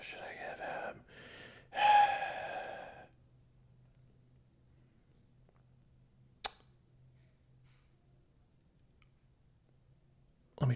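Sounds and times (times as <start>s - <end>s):
person breathing into a microphone: 0.6s - 3.1s
sharp click: 6.4s - 6.7s.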